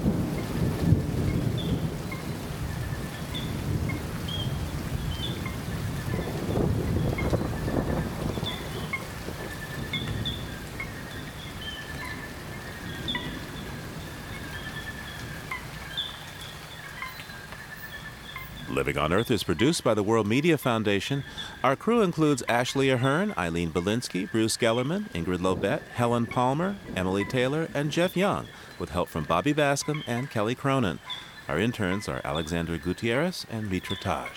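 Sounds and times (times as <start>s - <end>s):
afternoon thunder rolling through Atlantic Forest rainforest in Brazil: 0.0s - 19.9s, 24.5s - 29.0s
birds or insects chirping in repeated high calls: 0.0s - 34.3s
steady rain in Atlantic Forest rainforest in Brazil: 0.0s - 34.3s
speech: 18.9s - 34.3s.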